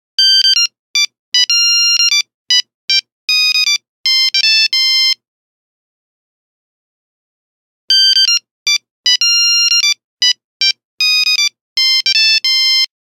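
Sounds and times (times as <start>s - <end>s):
Nokia phone buzzer: 0.2s - 5.2s, 7.9s - 12.9s.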